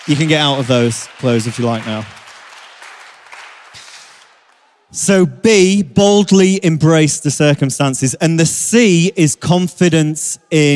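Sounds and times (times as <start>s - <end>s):
crowd applauding: 0.0s - 4.9s
speech: 0.1s - 2.2s, 4.9s - 10.7s.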